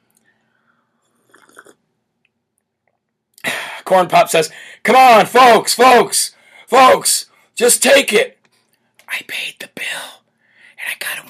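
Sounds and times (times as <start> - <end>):
slurping hot coffee: 1.0 - 1.8
speech: 3.9 - 8.3, 9.2 - 10.2.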